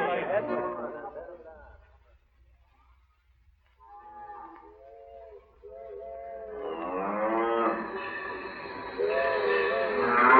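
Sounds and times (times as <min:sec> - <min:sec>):
cattle mooing on a railway line: 0:06.4 - 0:10.3.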